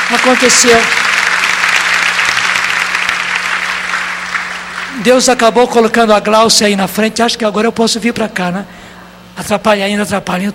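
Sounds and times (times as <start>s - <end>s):
church audience applause: 0.0s - 5.4s
speech: 0.1s - 1.2s, 5.0s - 8.8s, 9.4s - 10.5s.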